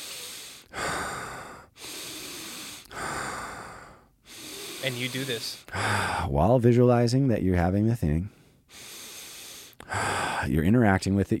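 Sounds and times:
rhythmic forceful breathing: 0:00.0 - 0:06.3, 0:08.3 - 0:10.6
speech: 0:04.8 - 0:08.4, 0:10.4 - 0:11.3.

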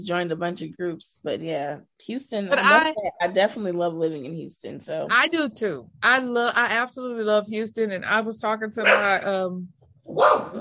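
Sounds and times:
speech: 0:00.0 - 0:10.5
dog barking outdoors in Houston: 0:08.8 - 0:09.1, 0:10.2 - 0:10.5.

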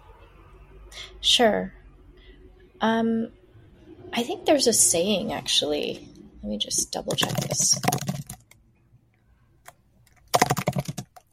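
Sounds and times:
speech: 0:01.2 - 0:01.8, 0:02.8 - 0:03.4, 0:04.1 - 0:08.2
rapid typing on a computer keyboard: 0:07.1 - 0:08.6, 0:09.6 - 0:11.3.

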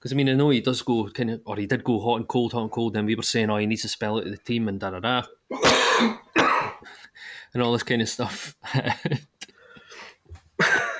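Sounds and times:
speech: 0:00.0 - 0:06.2, 0:06.8 - 0:09.5
person coughing: 0:05.5 - 0:06.8.

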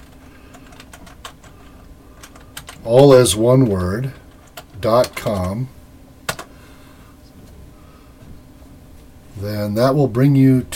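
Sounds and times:
typing on a computer keyboard: 0:00.0 - 0:02.8, 0:04.3 - 0:05.6
speech: 0:02.8 - 0:04.2, 0:04.8 - 0:05.8, 0:09.4 - 0:10.7.

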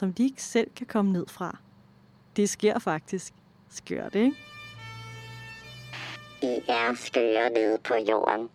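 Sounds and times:
speech: 0:00.0 - 0:01.7, 0:02.4 - 0:04.6, 0:06.4 - 0:08.5
fire truck siren wailing as the truck speeds toward a fire: 0:04.1 - 0:07.2.

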